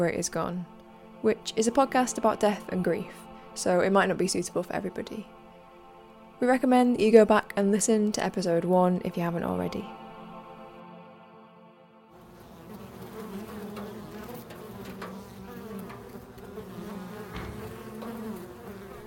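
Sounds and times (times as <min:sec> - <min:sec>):
speech: 0:00.0 - 0:05.4, 0:06.4 - 0:10.0
bees buzzing in a beehive in house rafters: 0:12.2 - 0:19.0.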